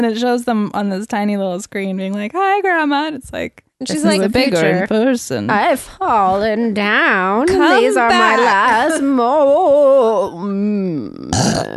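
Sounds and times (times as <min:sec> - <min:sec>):
speech: 0:00.0 - 0:11.7
loud drawn-out voiced burp: 0:10.9 - 0:11.7.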